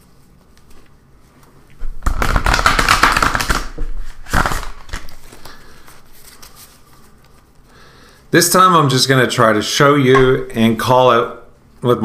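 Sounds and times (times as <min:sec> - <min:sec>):
deck of cards being shuffled: 0:00.1 - 0:07.5
speech: 0:08.3 - 0:12.0.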